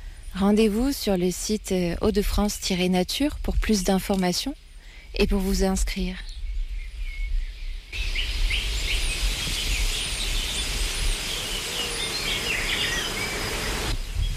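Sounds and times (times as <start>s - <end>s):
speech: 0.4s - 6.3s
birds chirping and tweeting: 4.3s - 14.3s
insect buzzing: 8.0s - 14.2s.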